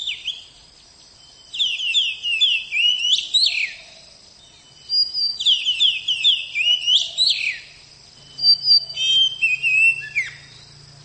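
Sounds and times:
oriental magpie-robin song: 0.0s - 11.0s.

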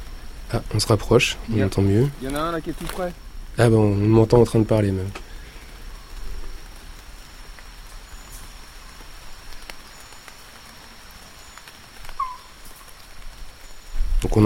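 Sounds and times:
rainwater dripping from forest leaves after a shower: 0.0s - 14.4s
speech: 0.5s - 5.2s.

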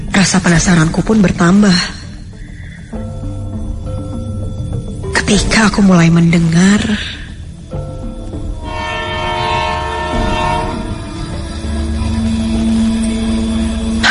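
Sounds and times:
speech: 0.2s - 2.0s, 5.3s - 7.2s
low rumble of rolling train cars: 6.0s - 14.0s
approaching train sounding its horn: 8.6s - 12.3s.

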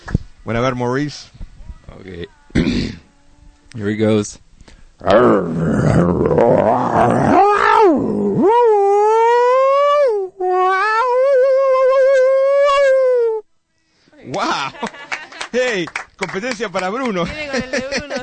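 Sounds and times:
speech: 0.4s - 2.8s, 3.7s - 4.4s, 5.0s - 8.6s, 15.6s - 18.2s
man imitating wild animal howls in a howling contest: 5.0s - 13.4s
laughter: 14.3s - 15.9s, 17.2s - 18.2s.

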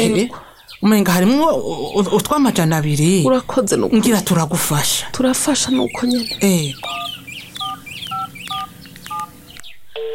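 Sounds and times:
speech: 0.0s - 7.0s
low constant hum: 0.0s - 10.1s
telephone keypad tones as a number is dialed: 6.8s - 9.3s.

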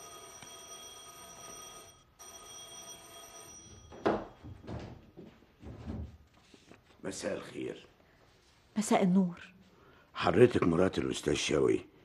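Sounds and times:
electric bell ringing at a house door: 0.0s - 5.3s
speech: 7.1s - 7.9s, 8.8s - 9.6s, 10.2s - 11.9s.

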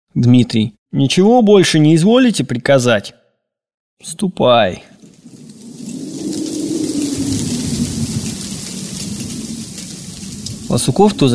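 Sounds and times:
speech: 0.1s - 3.2s, 4.0s - 5.0s, 10.7s - 11.3s
heavy rain drumming on a roof and windows: 5.0s - 11.3s.

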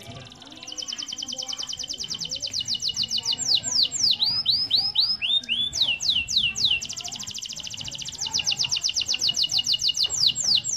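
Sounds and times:
canary singing master song for training birds: 0.0s - 10.7s.

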